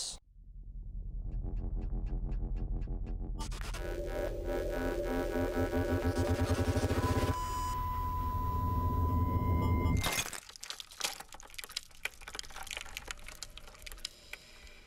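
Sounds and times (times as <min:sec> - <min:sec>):
steady low hum: 0:00.3 - 0:10.0.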